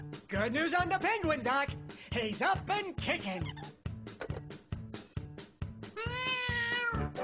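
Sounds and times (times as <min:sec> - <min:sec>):
speech: 0:00.5 - 0:03.7
cat meowing: 0:06.0 - 0:07.0.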